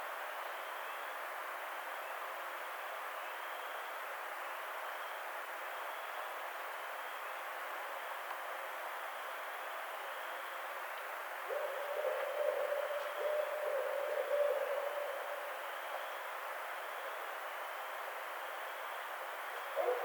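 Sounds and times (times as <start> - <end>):
constant broad background hiss: 0.0 - 20.0
barred owl hooting: 11.5 - 15.6, 19.8 - 20.0.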